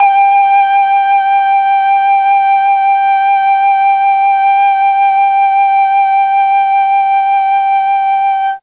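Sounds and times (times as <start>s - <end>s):
G3 mellotron flute: 0.0s - 8.6s.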